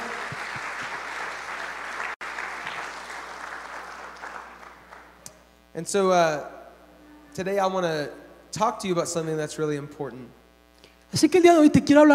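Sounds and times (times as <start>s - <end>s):
audience applauding volunteers: 0.0s - 5.2s
speech: 5.8s - 6.6s, 7.4s - 10.4s, 11.1s - 12.1s.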